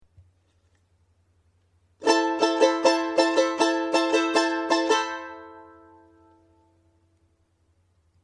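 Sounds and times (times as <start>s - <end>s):
charango playing huayño folk music: 2.0s - 6.6s.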